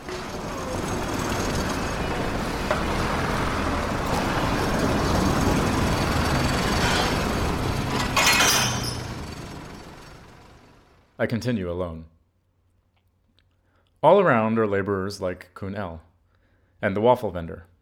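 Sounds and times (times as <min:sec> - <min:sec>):
elevated SkyTrain rumbling overhead: 0:00.0 - 0:11.1
sharp metallic screech of elevated SkyTrain: 0:06.0 - 0:09.3
speech: 0:11.2 - 0:12.2, 0:14.0 - 0:16.1, 0:16.8 - 0:17.7.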